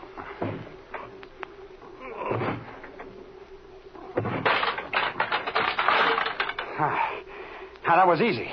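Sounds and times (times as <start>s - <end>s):
wooden door creaking, cracking and rattling as it is forced open with a shoulder: 4.2s - 6.7s
speech: 8.0s - 8.5s.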